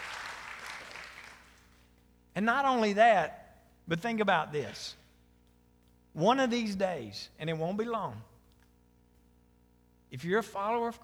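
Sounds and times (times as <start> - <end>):
audience clapping: 0.0 - 1.8
speech: 2.4 - 5.0, 6.2 - 8.3, 10.1 - 11.0.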